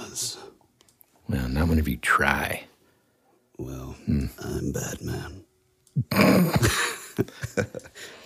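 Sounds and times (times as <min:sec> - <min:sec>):
speech: 0:01.3 - 0:02.7, 0:03.6 - 0:08.2
harsh raspy coughing fit: 0:06.0 - 0:07.0.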